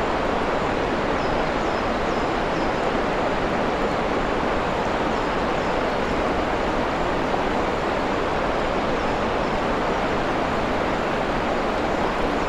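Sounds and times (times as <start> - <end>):
waterfall roaring in a forest glade in Mid Wales: 0.0 - 12.4.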